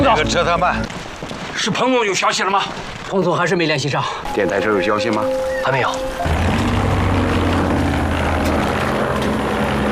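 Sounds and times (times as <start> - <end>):
speech: 0.1 - 1.0, 1.6 - 6.5
propeller airplane droning overhead: 5.3 - 9.8.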